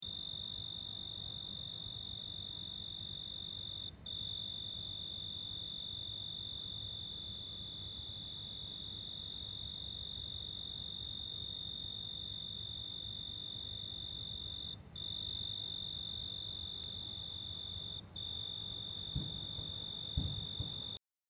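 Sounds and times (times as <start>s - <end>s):
cricket chirping: 0.0s - 21.0s.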